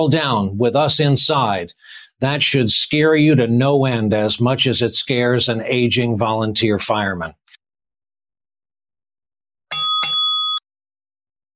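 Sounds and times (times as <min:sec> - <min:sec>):
speech: 0:00.0 - 0:07.5
bright bicycle bell ringing: 0:09.7 - 0:10.6.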